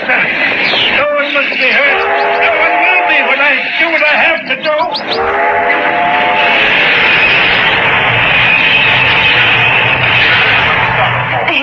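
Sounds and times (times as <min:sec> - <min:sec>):
train roaring past: 0:00.0 - 0:11.6
train whistle blast: 0:01.7 - 0:03.7, 0:05.1 - 0:11.0
speech: 0:04.3 - 0:05.7.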